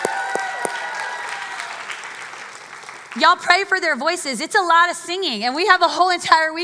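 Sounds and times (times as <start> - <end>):
crowd whooping: 0.0 - 2.0
crowd applauding the worship team: 0.0 - 3.3
speech: 3.1 - 6.6.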